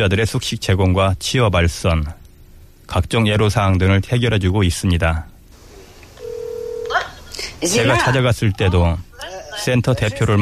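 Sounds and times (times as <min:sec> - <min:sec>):
speech: 0:00.0 - 0:02.2, 0:02.9 - 0:05.3, 0:07.6 - 0:10.4
telephone dialing tone: 0:06.2 - 0:07.0.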